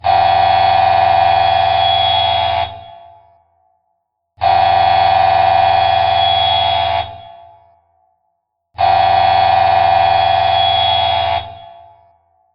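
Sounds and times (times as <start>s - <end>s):
factory siren: 0.0s - 3.6s, 4.4s - 12.3s.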